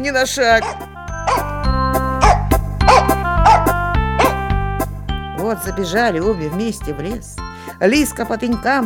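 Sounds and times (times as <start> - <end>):
speech: 0.0 - 1.4, 5.5 - 8.8
sustained musical tones: 0.4 - 7.7
dog barking: 2.2 - 4.4.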